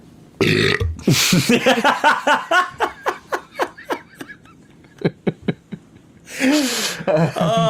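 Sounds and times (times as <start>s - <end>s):
loud human burp: 0.4s - 1.2s
rhythmic breathy laughter in short pulses: 1.0s - 7.6s.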